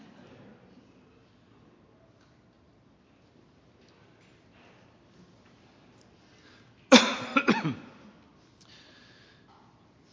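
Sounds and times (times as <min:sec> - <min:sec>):
person coughing from bread stuck in throat: 0:06.9 - 0:08.1.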